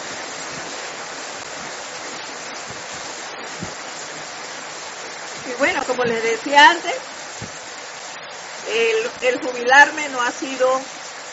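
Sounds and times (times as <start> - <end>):
heavy rain: 0.0 - 11.3
soft low thumps: 2.5 - 4.6, 5.2 - 7.8
speech: 5.5 - 7.2, 8.7 - 11.0.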